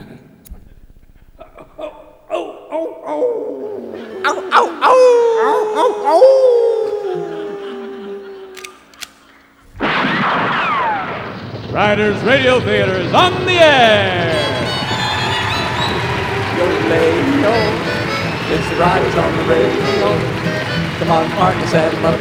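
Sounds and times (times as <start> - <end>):
yips: 1.1 - 11.3, 13.6 - 22.1
laughter: 1.3 - 9.6, 11.2 - 22.1
coyote howling: 1.4 - 9.8, 12.3 - 22.1
speech: 4.2 - 6.6, 11.8 - 14.5, 18.5 - 22.1
sharp cracks: 8.5 - 22.1
loud noisy burst: 9.6 - 22.1.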